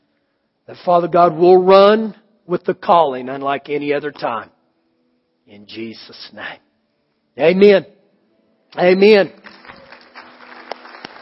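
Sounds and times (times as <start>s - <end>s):
speech: 0.7s - 4.6s, 5.5s - 6.6s, 7.4s - 8.0s, 8.7s - 9.6s
crowd applauding: 9.4s - 11.1s
sharp individual claps: 9.4s - 11.1s.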